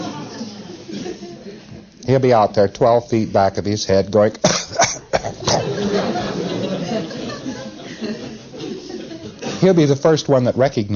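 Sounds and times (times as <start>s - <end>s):
faint chuckles from people in the room: 0.0s - 1.8s, 4.7s - 9.6s
speech: 2.1s - 5.4s, 9.6s - 10.9s
man imitating a cough: 4.4s - 5.8s.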